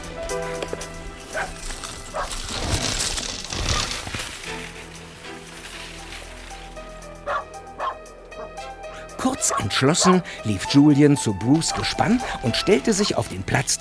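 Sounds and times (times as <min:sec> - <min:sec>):
pack of sled dogs barking excitedly: 0:01.2 - 0:03.0, 0:07.2 - 0:10.4, 0:11.6 - 0:12.4
speech: 0:09.5 - 0:13.7.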